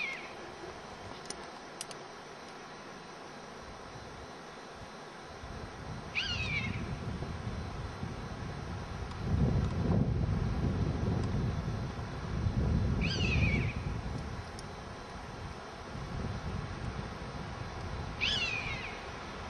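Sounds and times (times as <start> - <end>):
low wind rumble: 0.0 - 19.4
European honey buzzard anger calls: 6.1 - 6.8, 13.0 - 13.8, 18.2 - 19.0.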